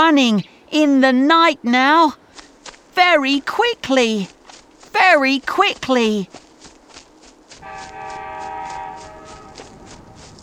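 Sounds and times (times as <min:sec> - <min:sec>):
speech: 0:00.1 - 0:02.2, 0:03.0 - 0:06.4
train rumbling past with rhythmic wheel clatter: 0:07.5 - 0:10.4.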